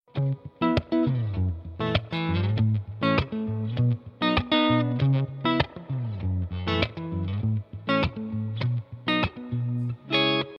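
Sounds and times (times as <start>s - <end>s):
electric guitar riff: 0.1s - 10.5s.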